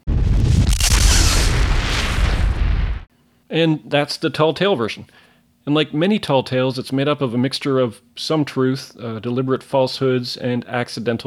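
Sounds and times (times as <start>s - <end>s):
massive atomic explosions from nuclear missiles fired at a base: 0.0s - 3.1s
speech: 3.5s - 11.2s.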